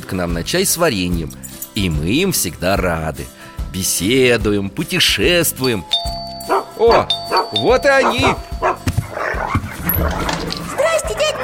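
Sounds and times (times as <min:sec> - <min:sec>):
speech: 0:00.1 - 0:06.2, 0:06.8 - 0:08.7
dog barking: 0:06.5 - 0:11.4.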